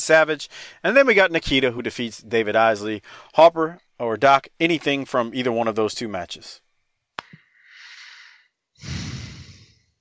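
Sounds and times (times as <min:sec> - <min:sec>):
speech: 0:00.0 - 0:06.6
heavy breaths blown into a microphone: 0:00.5 - 0:00.8, 0:03.0 - 0:03.4, 0:07.3 - 0:10.0.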